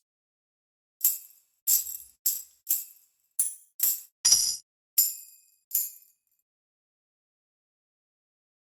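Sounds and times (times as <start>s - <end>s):
shakers: 1.0s - 6.0s.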